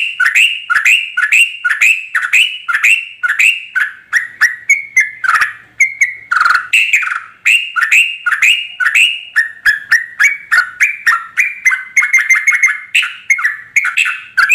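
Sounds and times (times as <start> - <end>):
Yellow-vented bulbul song in rapid-fire style: 0.0 - 14.5.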